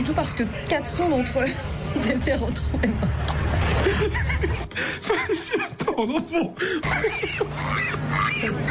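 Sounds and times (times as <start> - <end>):
low steady hum: 0.0 - 8.6
speech: 0.0 - 8.6
laughter: 3.6 - 8.6
pigs squealing and grunting: 6.8 - 8.6.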